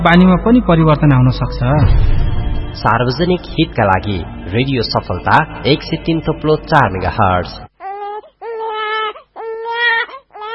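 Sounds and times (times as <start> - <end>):
speech: 0.0 - 7.7
little girl sick with diarrhoea crying: 7.8 - 10.5.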